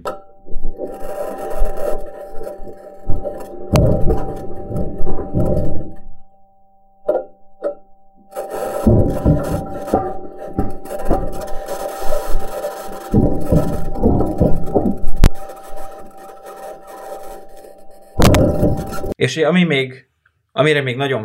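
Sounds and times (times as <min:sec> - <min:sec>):
steady mechanical hum of a Mars rover: 0:00.0 - 0:19.2
Mars rover metal wheels grinding over rocks: 0:00.6 - 0:06.0, 0:08.3 - 0:19.2
sharp knocks of rover wheels on rocks: 0:03.0 - 0:06.2, 0:07.0 - 0:19.2
speech: 0:19.3 - 0:20.0, 0:20.6 - 0:21.2.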